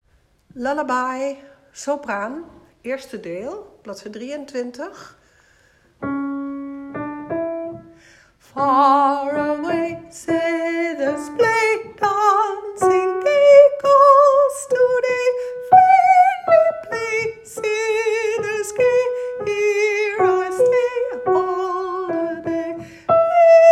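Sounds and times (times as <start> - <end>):
soprano singing a lullaby: 8.4 - 23.7.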